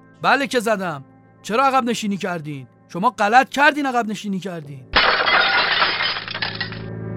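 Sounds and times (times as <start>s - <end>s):
speech: 0.2s - 4.9s
fist smashing a glass table: 5.0s - 6.8s.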